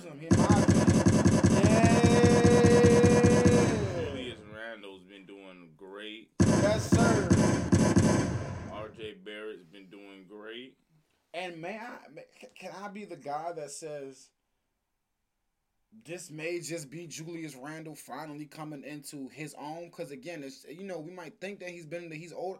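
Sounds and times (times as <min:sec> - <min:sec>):
speech: 0:00.1 - 0:00.6, 0:13.0 - 0:14.4, 0:15.9 - 0:22.5
rapid rattling automatic gunfire sound effects: 0:00.3 - 0:04.4, 0:06.4 - 0:09.0.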